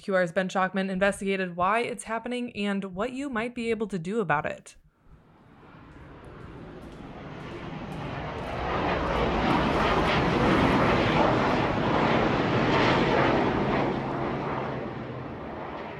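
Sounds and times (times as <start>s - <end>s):
speech: 0.0s - 4.8s
Boeing F-18 Super Hornet military jet flying low over a residential neighborhood: 5.2s - 15.9s.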